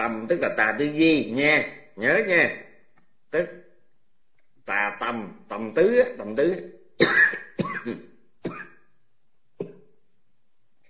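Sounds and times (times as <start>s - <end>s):
speech: 0.0s - 2.7s, 3.3s - 3.6s, 4.7s - 8.6s
harsh raspy coughing: 7.0s - 8.9s.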